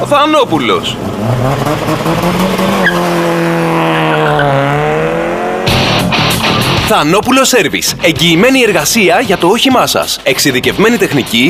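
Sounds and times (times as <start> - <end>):
speech: 0.0 - 3.3, 6.9 - 11.4
car engine revving and accelerating: 0.5 - 6.9
tire squeal: 2.2 - 4.8.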